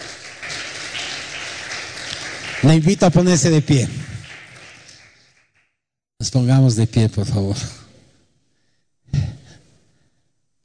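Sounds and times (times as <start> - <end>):
crowd applauding: 0.0 - 5.6
speech: 2.6 - 4.1, 6.2 - 7.8.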